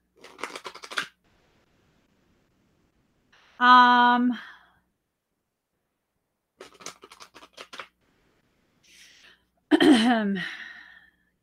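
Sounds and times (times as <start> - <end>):
tarot card deck being shuffled: 0.2 - 1.2, 6.6 - 8.0
speech: 3.6 - 4.5, 10.1 - 10.6.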